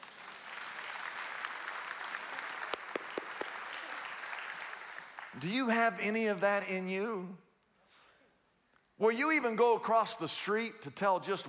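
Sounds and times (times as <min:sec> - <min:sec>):
room full of people applauding: 0:00.0 - 0:05.4
sharper closer claps: 0:00.0 - 0:05.4
speech: 0:05.4 - 0:07.4, 0:09.0 - 0:11.4.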